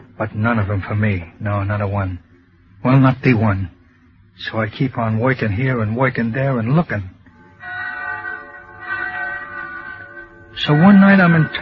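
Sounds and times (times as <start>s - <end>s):
speech: 0.2s - 3.8s, 4.4s - 7.1s, 10.6s - 11.6s
bells ringing: 7.6s - 11.6s.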